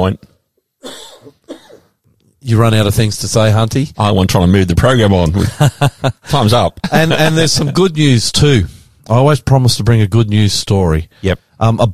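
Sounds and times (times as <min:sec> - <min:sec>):
speech: 0:00.0 - 0:01.4, 0:02.4 - 0:11.9
person coughing harshly: 0:00.8 - 0:02.0
laughter: 0:05.3 - 0:08.0.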